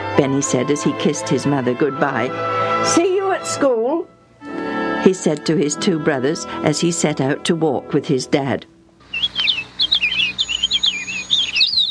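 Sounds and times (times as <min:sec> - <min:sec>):
speech: 0:00.2 - 0:04.1, 0:05.0 - 0:08.7
birds singing on a June morning: 0:09.0 - 0:11.9.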